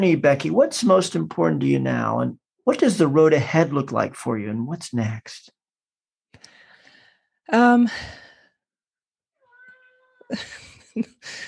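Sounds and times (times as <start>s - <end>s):
speech: 0.0s - 5.6s, 7.5s - 8.2s, 10.3s - 11.4s
pet cat meowing with a wavering nasal pitch: 9.4s - 10.4s.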